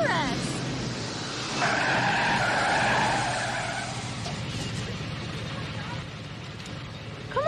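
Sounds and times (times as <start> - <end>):
car engine rumble: 0.0 - 7.4
car tires squealing and skidding while reversing: 1.3 - 4.4.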